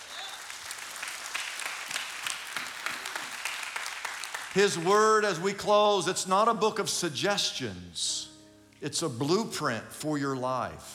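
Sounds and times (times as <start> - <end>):
crowd applauding: 0.0 - 5.5
speech: 4.6 - 10.9.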